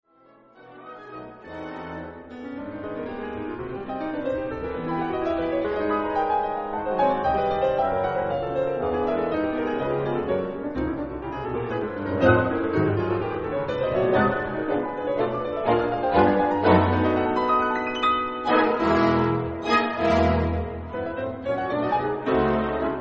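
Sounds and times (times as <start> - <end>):
piano toccata: 0.1 - 23.0.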